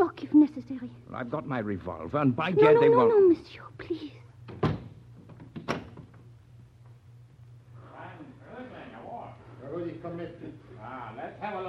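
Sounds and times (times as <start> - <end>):
low steady hum: 0.0 - 11.6
speech: 0.4 - 4.2, 9.8 - 11.6
door shutting: 4.5 - 6.2.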